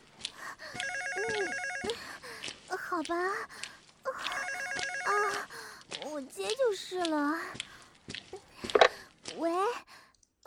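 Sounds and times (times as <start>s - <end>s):
telephone ringing indoors with warbling electronic tones: 0.8s - 2.0s, 4.3s - 5.4s
speech: 3.0s - 3.6s, 5.1s - 7.7s, 9.4s - 9.9s.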